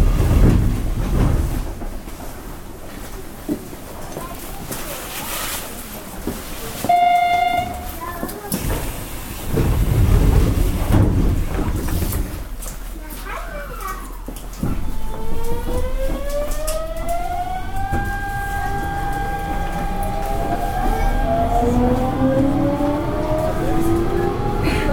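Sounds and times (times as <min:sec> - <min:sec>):
local electric train running with heavy low rumble and rattling: 0:00.0 - 0:24.9
electric train motor whine rising as the train accelerates: 0:15.1 - 0:24.7.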